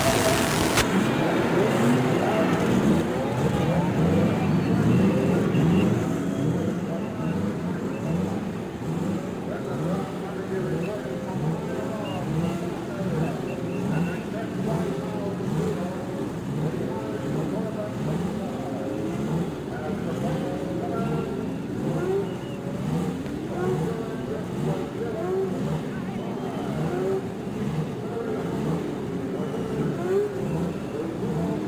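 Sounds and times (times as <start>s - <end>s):
racing car engines roaring on a speedway: 0.0s - 31.6s.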